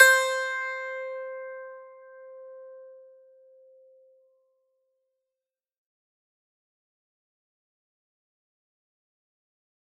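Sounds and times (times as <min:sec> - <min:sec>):
plucked strings on C4: 0:00.0 - 0:03.9.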